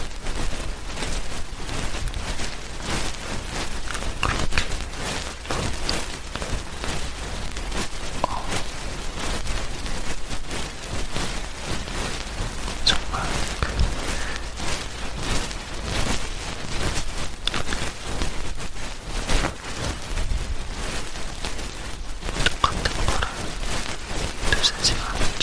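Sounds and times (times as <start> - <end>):
crackly ear cleaning and ear touching: 0.0 - 25.4
brushing strokes: 0.3 - 25.4.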